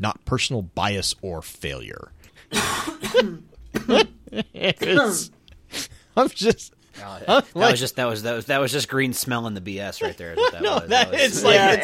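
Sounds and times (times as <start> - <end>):
speech: 0.0 - 11.8
person coughing: 2.5 - 4.2
laughter: 3.8 - 5.3, 10.0 - 11.8.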